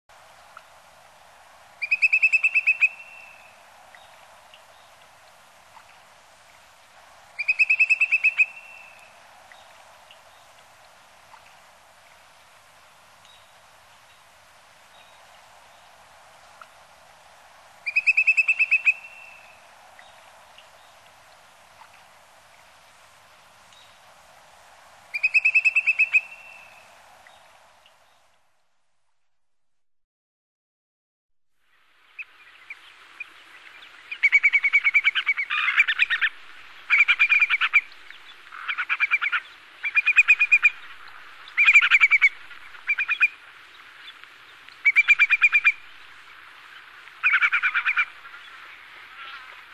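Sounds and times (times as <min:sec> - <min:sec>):
Numenius phaeopus calling by the sea in Sakhalin: 0:01.8 - 0:03.5, 0:07.4 - 0:09.1, 0:17.8 - 0:19.6, 0:25.1 - 0:26.8, 0:34.1 - 0:43.4, 0:44.8 - 0:46.1, 0:47.2 - 0:48.6.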